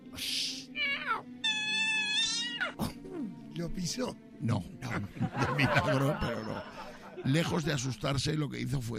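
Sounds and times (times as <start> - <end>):
black cat hissing breathily: 0.4 - 2.9
black cat meowing on a street on a summer night: 0.7 - 2.8
speech: 3.6 - 8.9
laughter: 5.0 - 7.9.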